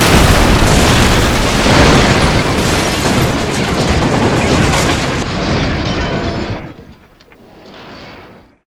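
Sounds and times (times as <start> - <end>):
rocket breaking wall: 0.0 - 8.5.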